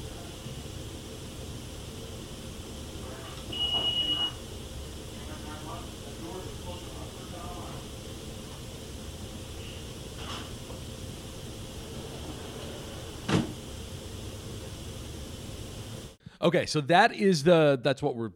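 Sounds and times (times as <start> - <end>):
closet door shutting: 11.8 - 13.6
speech: 16.4 - 18.3.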